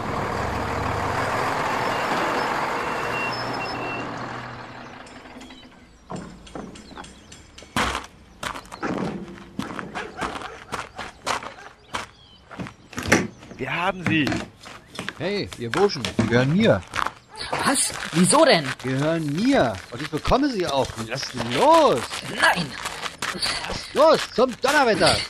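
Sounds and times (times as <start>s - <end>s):
truck arriving with engine rumble: 0.0s - 25.2s
clanks and thuds: 4.0s - 17.2s
footsteps: 6.1s - 25.2s
speech: 13.8s - 14.5s, 15.2s - 17.0s, 17.7s - 25.2s.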